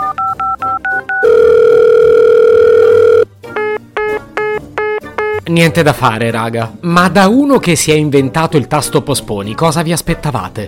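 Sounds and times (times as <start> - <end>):
long steady telephone tone: 0.0 - 3.3
pulsed telephone beeps of redialing: 0.0 - 5.4
speech: 5.5 - 10.6.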